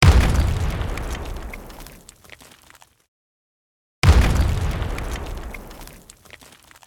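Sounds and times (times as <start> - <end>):
bassy explosion: 0.0 - 1.6, 4.0 - 6.0.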